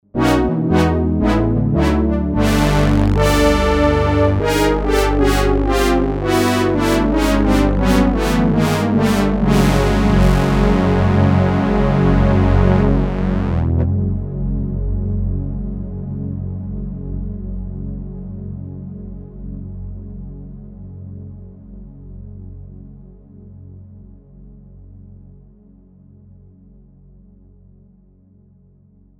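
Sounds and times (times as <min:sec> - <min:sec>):
analog synth brass: 0:00.0 - 0:20.8.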